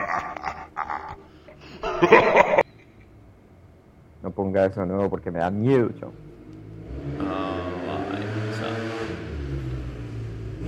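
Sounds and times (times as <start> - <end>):
laughter: 0.0 - 2.7
speech: 4.3 - 6.3
delivery rider's motorcycle engine revving: 6.1 - 10.6.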